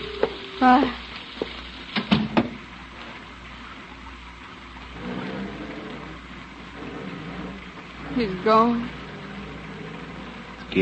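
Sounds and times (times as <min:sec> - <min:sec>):
steady rain hissing: 0:00.0 - 0:10.8
knocks: 0:00.2 - 0:02.6
speech: 0:00.6 - 0:01.0, 0:08.2 - 0:09.0.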